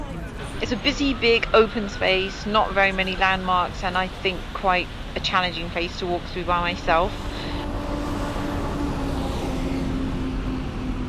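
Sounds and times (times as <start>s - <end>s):
busy road traffic: 0.0s - 11.0s
speech: 0.6s - 7.3s.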